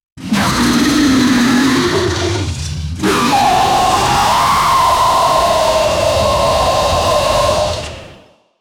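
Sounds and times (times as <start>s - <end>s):
hybrid dinosaur combat roar: 0.2s - 8.4s.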